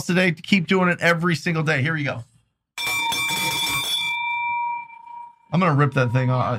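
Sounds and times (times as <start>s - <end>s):
speech: 0.0s - 2.3s, 5.5s - 6.5s
bell rung rapidly with a jangling strike: 2.8s - 6.5s.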